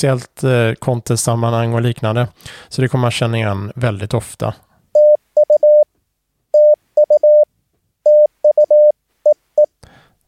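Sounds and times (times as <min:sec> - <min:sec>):
speech: 0:00.0 - 0:04.7
Morse code tone beeping: 0:05.0 - 0:05.9, 0:06.6 - 0:07.5, 0:08.1 - 0:09.7.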